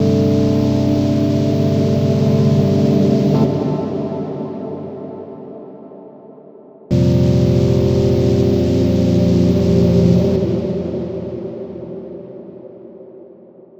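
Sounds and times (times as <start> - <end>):
airy synth pad loop at 139 bpm: 0.0 - 4.2, 6.9 - 12.6.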